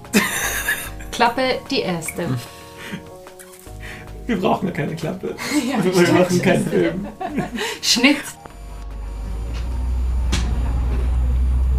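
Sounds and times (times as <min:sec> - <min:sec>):
laughter: 0:00.1 - 0:01.1, 0:05.4 - 0:08.3
speech: 0:01.2 - 0:03.1, 0:04.3 - 0:08.4
moving bus engine rumble: 0:08.9 - 0:11.7.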